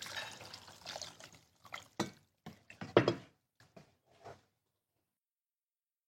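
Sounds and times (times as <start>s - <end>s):
water poured for cooking: 0.0s - 2.8s.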